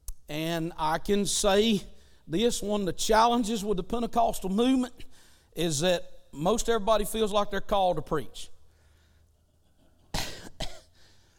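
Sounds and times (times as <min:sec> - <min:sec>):
speech: 0:00.3 - 0:08.5
harsh coughs close to the microphone: 0:10.0 - 0:11.0.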